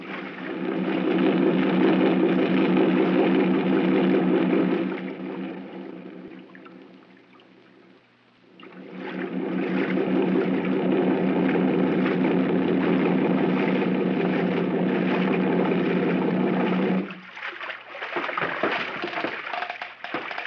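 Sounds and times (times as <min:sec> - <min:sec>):
boat engine droning: 0:00.0 - 0:17.5
water splashes: 0:00.0 - 0:20.4
knocks against an old piling at a forested mainland shore: 0:18.4 - 0:20.4.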